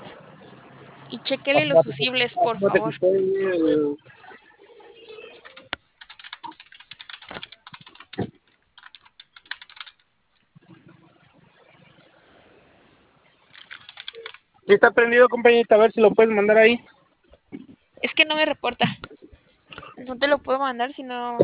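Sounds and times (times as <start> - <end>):
speech: 1.1 - 4.2, 14.7 - 17.0, 18.4 - 19.1, 20.0 - 21.4
cash register keyboard keys clicking: 5.4 - 10.1, 13.5 - 14.4.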